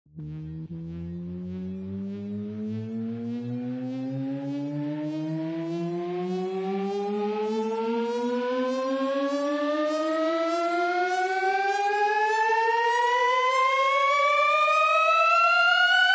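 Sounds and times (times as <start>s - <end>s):
riser at 100 BPM in D: 0.2s - 16.0s.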